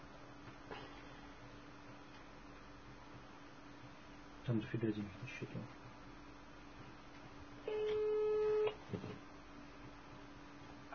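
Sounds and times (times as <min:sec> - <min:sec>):
speech: 0:04.5 - 0:05.9
phone busy tone as a call is cut off: 0:07.7 - 0:08.8.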